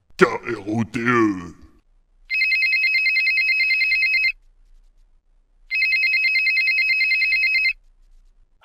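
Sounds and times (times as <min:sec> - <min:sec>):
speech: 0:00.2 - 0:01.6
telephone ringtone: 0:02.3 - 0:04.3, 0:05.7 - 0:07.7.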